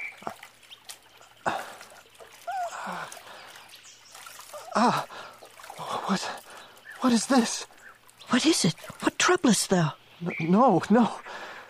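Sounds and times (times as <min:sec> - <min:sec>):
water splashing as someone washes their eyes in a pool: 0:00.0 - 0:11.6
person gasping: 0:01.4 - 0:01.9, 0:02.5 - 0:03.5, 0:04.6 - 0:06.6
speech: 0:06.1 - 0:06.4, 0:07.0 - 0:07.7, 0:08.3 - 0:11.4.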